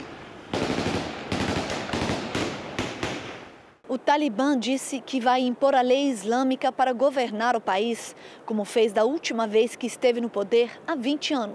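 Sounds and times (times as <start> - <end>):
gunshots fired outdoors in the streets of Afghanistan's capital at protesters: 0.0 - 3.6
speech: 3.9 - 11.5.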